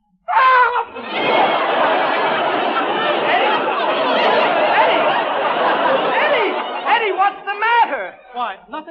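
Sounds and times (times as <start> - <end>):
man letting out a short high-pitched scream: 0.3 - 1.0
large audience laughing: 0.8 - 8.5.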